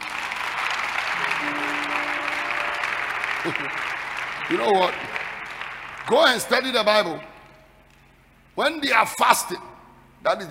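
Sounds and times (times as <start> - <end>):
audience applauding steadily: 0.0 - 7.4
speech: 3.4 - 5.2, 6.0 - 7.3, 8.6 - 10.4.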